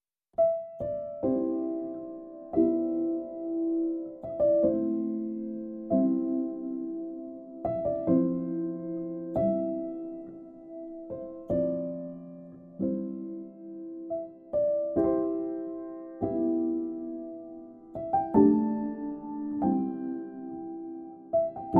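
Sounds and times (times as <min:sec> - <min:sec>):
piano song: 0:00.3 - 0:21.7.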